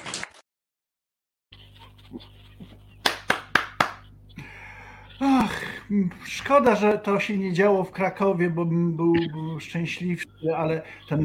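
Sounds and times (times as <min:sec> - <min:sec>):
speech: 0:02.1 - 0:02.4, 0:05.2 - 0:11.2
audience applause at a religious healing meeting: 0:03.0 - 0:04.0.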